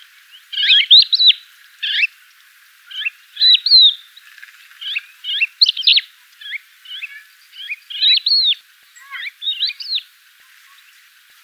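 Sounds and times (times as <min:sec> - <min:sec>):
crested lark Galerida cristata calling: 0:00.4 - 0:02.1, 0:02.9 - 0:04.0, 0:04.8 - 0:10.9.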